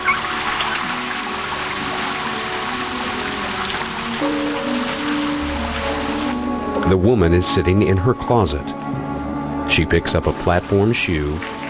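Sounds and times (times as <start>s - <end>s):
running shower water hissing and pattering: 0.0s - 6.7s, 10.0s - 11.6s
speech: 6.9s - 8.9s, 9.8s - 11.6s.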